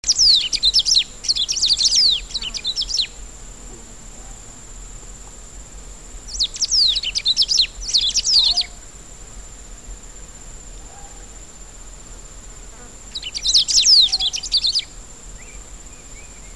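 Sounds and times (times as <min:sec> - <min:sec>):
Saltator atricollis sounds: 0:00.0 - 0:03.3, 0:06.3 - 0:08.8, 0:12.8 - 0:16.5.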